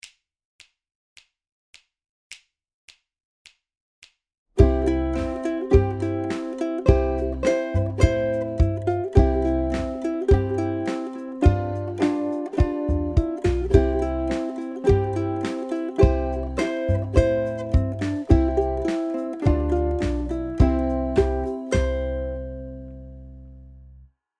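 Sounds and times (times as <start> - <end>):
ukulele backing: 4.6 - 23.9.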